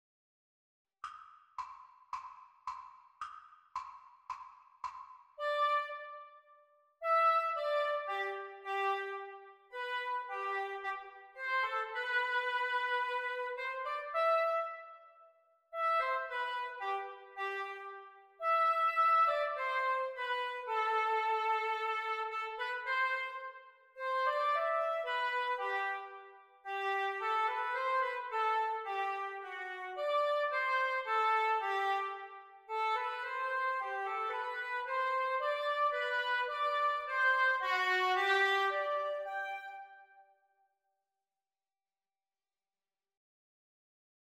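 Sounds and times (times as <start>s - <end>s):
oboe duet: 5.4s - 6.2s, 7.0s - 15.0s, 15.8s - 40.2s.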